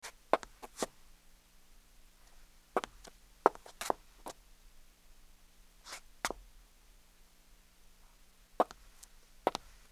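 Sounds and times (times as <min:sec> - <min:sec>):
heel scuffing concrete: 0:00.0 - 0:01.0, 0:02.8 - 0:04.4, 0:05.8 - 0:06.4, 0:08.6 - 0:09.9
heeled footsteps on concrete: 0:02.8 - 0:04.4, 0:08.6 - 0:09.9.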